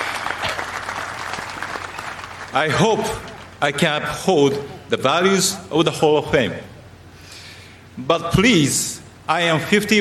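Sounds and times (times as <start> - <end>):
audience clapping at an induction speech: 0.0 - 3.6
speech: 2.5 - 6.7, 8.0 - 9.9.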